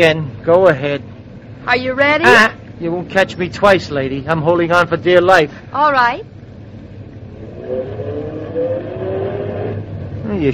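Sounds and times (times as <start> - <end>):
speech: 0.0 - 6.3
car engine revving and accelerating: 6.7 - 10.5.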